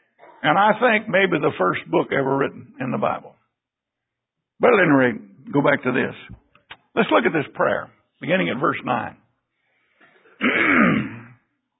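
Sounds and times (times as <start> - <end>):
single harsh throat clear: 0.1 - 0.5, 10.2 - 11.5
speech: 0.4 - 3.4, 4.6 - 6.4, 7.0 - 9.2, 10.4 - 11.0.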